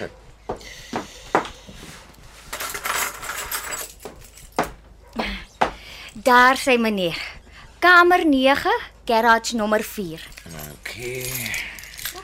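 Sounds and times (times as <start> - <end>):
speech: 0.0 - 0.9, 6.3 - 10.3, 11.0 - 11.6
keys jangling: 2.6 - 4.8, 10.2 - 12.2.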